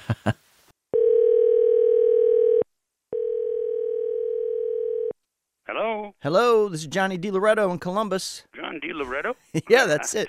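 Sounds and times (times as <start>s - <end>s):
speech: 0.1s - 0.4s, 6.2s - 10.2s
electronic telephone ring tones down the line: 1.0s - 5.1s.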